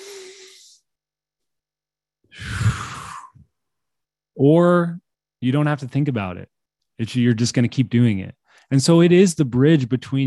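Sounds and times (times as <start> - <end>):
deep breath in during a somatic breathwork session: 2.3 - 3.5
speech: 4.4 - 10.2.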